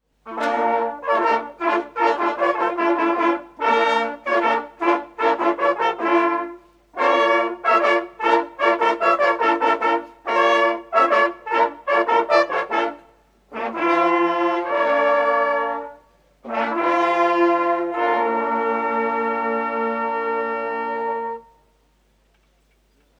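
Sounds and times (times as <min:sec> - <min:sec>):
hunting horn players playing: 0:00.0 - 0:21.8.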